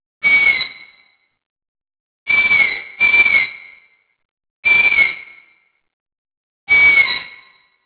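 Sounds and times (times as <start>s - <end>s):
Long-eared Owl Asio otus fledglings calling at Carrignagour near Lismore: 0.2s - 1.1s, 2.3s - 3.9s, 4.6s - 5.6s, 6.7s - 7.5s.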